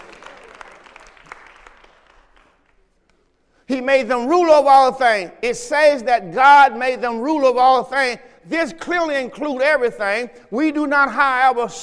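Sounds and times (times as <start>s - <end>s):
congregation applause: 0.0s - 2.8s
speech: 3.7s - 11.8s.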